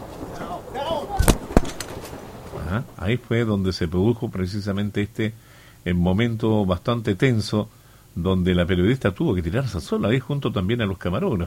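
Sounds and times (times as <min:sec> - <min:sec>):
burst of gunfire: 0:01.2 - 0:02.3
speech: 0:02.7 - 0:11.4.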